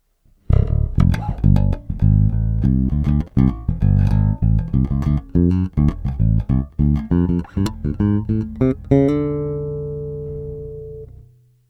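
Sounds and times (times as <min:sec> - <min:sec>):
fingerstyle handmade electric bass: 0:00.4 - 0:11.6.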